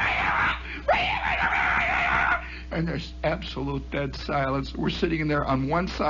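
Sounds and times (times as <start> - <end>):
distant man yelling in the woods: 0.0 - 2.4
steady noise: 0.0 - 6.0
speech: 2.8 - 6.0.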